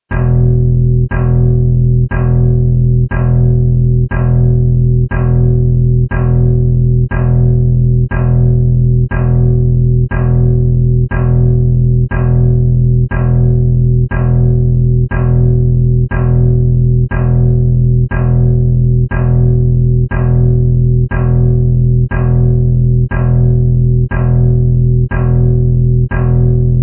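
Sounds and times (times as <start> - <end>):
ukulele bass note E1: 0.1 - 26.8.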